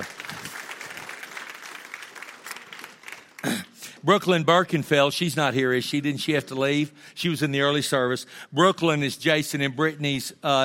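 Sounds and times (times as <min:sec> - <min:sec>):
audience applauding a boy who does ministry: 0:00.0 - 0:03.7
speech: 0:04.0 - 0:10.6.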